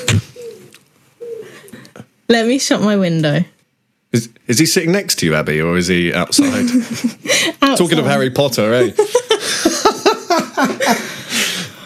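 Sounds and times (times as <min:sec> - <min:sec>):
owl hooting outside window: 0:00.0 - 0:01.8
speech: 0:02.3 - 0:11.5
laughter: 0:06.3 - 0:07.6, 0:08.7 - 0:11.6.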